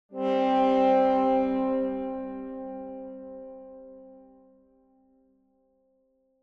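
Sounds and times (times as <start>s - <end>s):
tuba duet, lower part: 0.1s - 4.1s.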